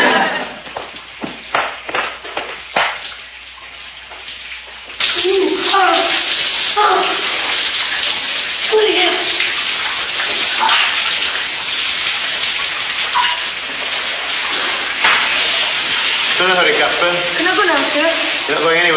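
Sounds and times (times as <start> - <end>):
shower water running with steady loud hissing spray: 0.0 - 18.9.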